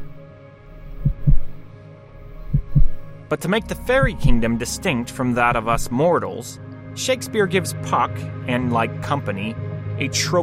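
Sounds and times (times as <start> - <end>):
slow heartbeat: 0.0 - 1.7, 2.3 - 3.2, 3.9 - 4.5
speech: 3.3 - 10.4.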